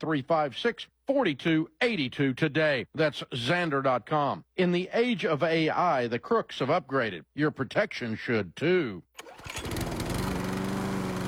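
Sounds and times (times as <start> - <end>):
speech: 0.0 - 9.6
zero-turn riding lawn mower engine: 9.2 - 11.2.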